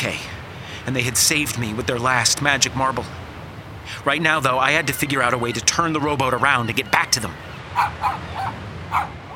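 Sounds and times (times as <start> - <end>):
speech: 0.0 - 3.2, 3.9 - 8.3
dog barking: 7.7 - 9.3.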